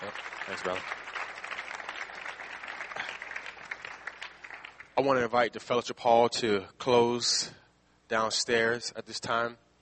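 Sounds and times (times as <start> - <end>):
audience at a church service clapping: 0.0 - 5.0
speech: 0.1 - 1.0, 5.0 - 9.6.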